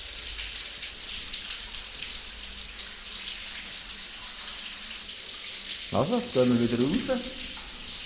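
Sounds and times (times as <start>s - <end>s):
water flowing inside an enclosed stone spring chamber: 0.0s - 8.0s
speech: 5.9s - 7.5s.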